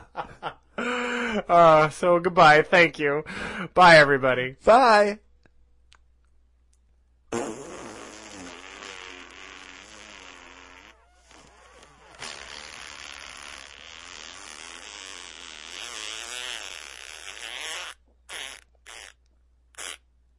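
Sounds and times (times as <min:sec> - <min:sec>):
speech: 0:01.4 - 0:05.2
long drawn-out fart: 0:07.3 - 0:19.2, 0:19.8 - 0:20.0.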